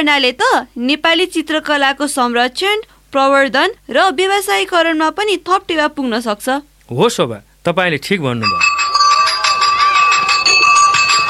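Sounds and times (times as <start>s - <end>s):
speech: 0.0s - 8.8s
school bell ringing: 8.4s - 11.2s.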